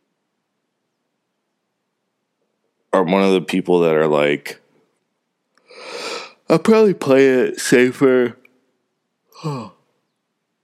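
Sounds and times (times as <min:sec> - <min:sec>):
speech: 0:03.0 - 0:04.6, 0:06.5 - 0:08.4, 0:09.4 - 0:09.8
breathy yawn: 0:05.6 - 0:06.4, 0:09.3 - 0:09.9.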